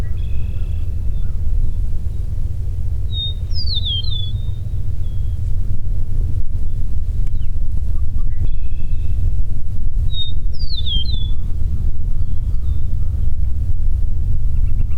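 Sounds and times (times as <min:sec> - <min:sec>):
Eastern meadowlark whistling song: 0:00.0 - 0:02.3, 0:03.0 - 0:05.4, 0:06.6 - 0:09.3, 0:10.1 - 0:13.3, 0:14.5 - 0:14.9
constant low rumble: 0:00.0 - 0:14.9.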